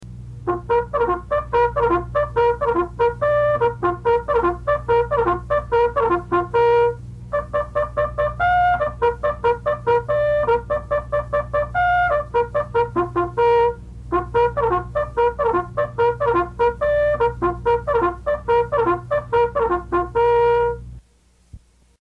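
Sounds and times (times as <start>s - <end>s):
bugle calls: 0.5s - 20.8s.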